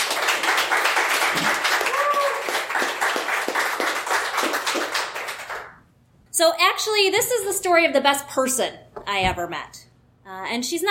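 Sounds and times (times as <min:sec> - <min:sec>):
crowd applauding: 0:00.0 - 0:05.8
person whooping: 0:01.4 - 0:02.7
speech: 0:06.4 - 0:10.8.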